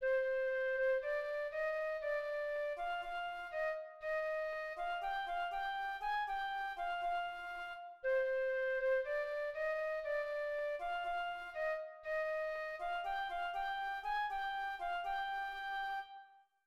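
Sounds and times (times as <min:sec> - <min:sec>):
second flute: 0:00.0 - 0:16.6.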